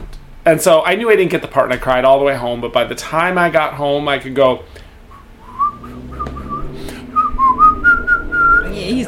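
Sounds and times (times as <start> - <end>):
speech: 0.5 - 4.8
person whistling a wavering sliding tune: 5.1 - 9.0.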